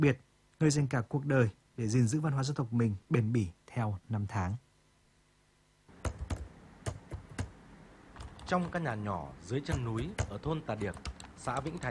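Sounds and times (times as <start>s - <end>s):
speech: 0.0s - 4.6s, 8.5s - 11.8s
man typing on a computer keyboard in a small house at the foot of a mountain in Vietnam: 6.0s - 7.5s, 8.2s - 8.8s, 9.6s - 11.8s.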